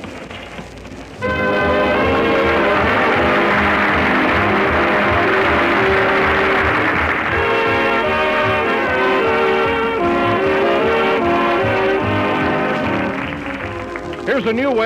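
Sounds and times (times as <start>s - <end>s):
low rumbling of arriving train: 1.2s - 12.4s
train horn blaring as a train arrives at a depot: 1.2s - 14.7s
speech: 14.4s - 14.8s.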